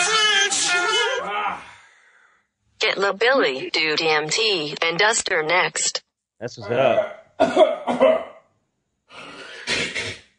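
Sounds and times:
harsh coughing from something caught in the throat: 0.0 - 1.3, 6.8 - 8.5, 9.2 - 10.3
speech: 2.8 - 8.3.

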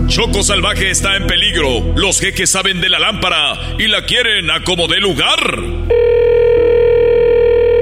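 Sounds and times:
speech: 0.2 - 6.1
telephone ringing with electronic buzzing tone: 5.9 - 7.8.

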